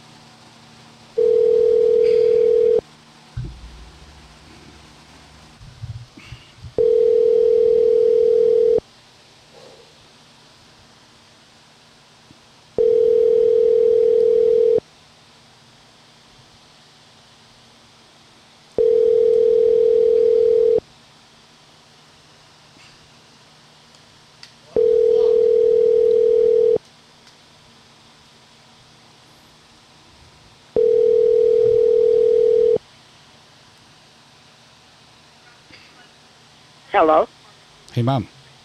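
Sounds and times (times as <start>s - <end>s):
hum: 0.0s - 38.6s
phone ringback tone from a call placed via Siri while driving: 1.2s - 2.8s, 6.8s - 8.8s, 12.8s - 14.8s, 18.8s - 20.8s, 24.8s - 26.8s, 30.8s - 32.8s
speech: 37.0s - 37.2s, 38.0s - 38.4s.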